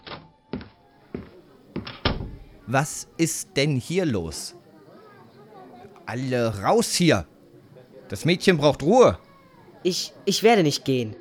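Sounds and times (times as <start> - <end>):
door opening into a room: 0.1 - 2.5
speech: 2.7 - 4.6, 6.1 - 7.3, 8.1 - 9.2, 9.8 - 11.2.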